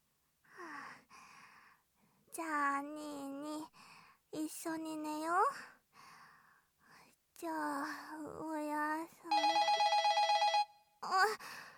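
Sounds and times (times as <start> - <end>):
speech: 2.4 - 3.7, 4.3 - 5.8, 7.4 - 9.6, 11.0 - 11.6
telephone bell ringing: 9.3 - 10.9.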